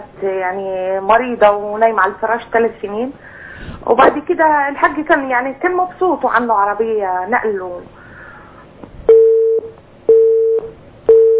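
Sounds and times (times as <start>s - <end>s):
speech: 0.2s - 8.0s
telephone busy tone after a dropped call: 9.1s - 11.3s.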